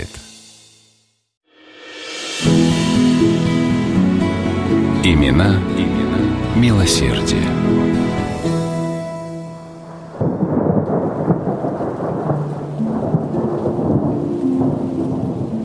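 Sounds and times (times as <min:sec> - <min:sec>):
soft musical chord: 0:01.8 - 0:11.4, 0:12.4 - 0:15.6
heavy rain pouring in a thunderstorm: 0:02.5 - 0:15.6
speech: 0:05.0 - 0:06.0, 0:06.6 - 0:08.0
deep thunder rumbling: 0:09.8 - 0:15.6.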